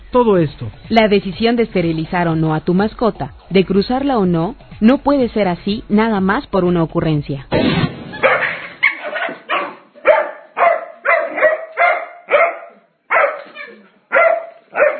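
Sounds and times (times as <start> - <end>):
speech: 0.1 - 7.9
dog barking: 8.2 - 14.9.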